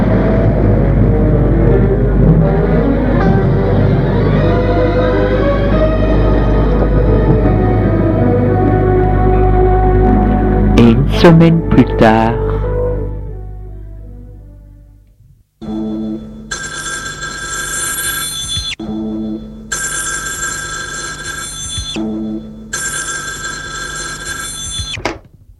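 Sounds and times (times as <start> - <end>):
brief low opening sound: 0.0 - 16.5
speech: 11.2 - 12.4
telephone bell ringing for an incoming call: 15.7 - 25.0.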